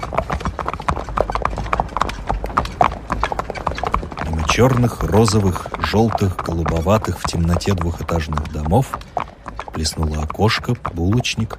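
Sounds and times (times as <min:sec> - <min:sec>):
horse hooves clip-clopping while trotting and pulling a stagecoach: 0:00.0 - 0:11.5
horses snorting or whinnying: 0:00.0 - 0:11.5
rumbling stagecoach wheels: 0:00.0 - 0:11.5
speech: 0:04.6 - 0:09.0, 0:09.8 - 0:11.5.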